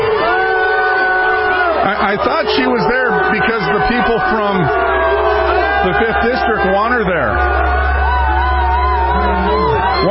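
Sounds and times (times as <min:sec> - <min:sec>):
crowd at an event in Minnesota shouting down a female speaker: 0:00.0 - 0:10.1
speech: 0:02.1 - 0:04.9, 0:05.8 - 0:07.6.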